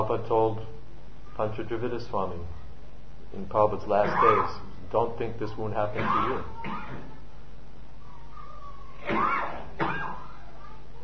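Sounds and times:
speech: 0:00.0 - 0:00.8, 0:01.4 - 0:02.6, 0:03.3 - 0:07.1
person coughing up mucus: 0:04.0 - 0:04.6, 0:05.9 - 0:07.2, 0:09.0 - 0:10.2.

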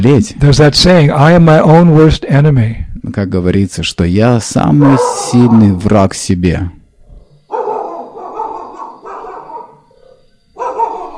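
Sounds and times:
speech: 0:00.0 - 0:06.8
dog barking in Vrindavan: 0:04.7 - 0:05.7, 0:07.5 - 0:11.1.

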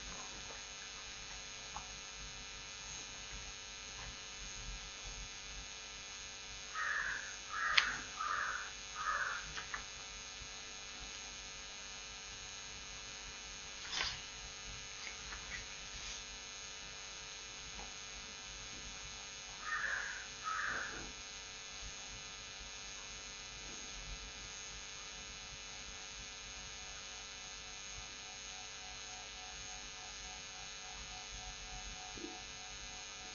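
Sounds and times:
steady low electrical hum: 0:00.0 - 0:33.3
crow cawing: 0:06.8 - 0:09.5, 0:19.6 - 0:21.1.

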